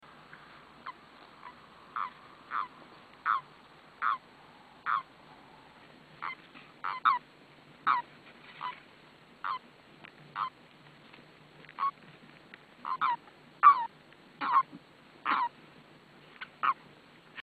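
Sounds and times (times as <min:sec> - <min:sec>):
Bufo bufo call: 0:00.8 - 0:05.1, 0:06.2 - 0:07.2, 0:07.8 - 0:08.8, 0:09.4 - 0:09.7, 0:10.3 - 0:10.6, 0:11.7 - 0:12.0, 0:12.8 - 0:15.6, 0:16.4 - 0:16.8.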